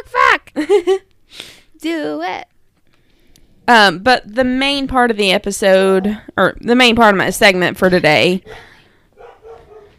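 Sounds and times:
speech: 0:00.6 - 0:02.4, 0:03.7 - 0:08.7
short dog barks: 0:09.2 - 0:09.9.

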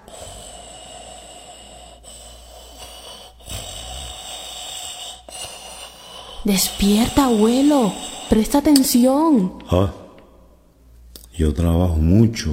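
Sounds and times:
grandfather snoring loudly at a church service: 0:00.0 - 0:08.6
speech: 0:06.4 - 0:10.0, 0:11.4 - 0:12.5.

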